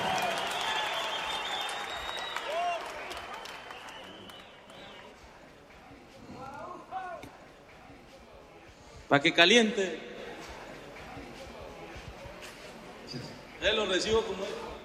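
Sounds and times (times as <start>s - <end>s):
people whooping and shouting: 0.0s - 5.0s
crowd applauding: 0.0s - 5.2s
speech: 9.1s - 10.1s, 13.8s - 14.7s.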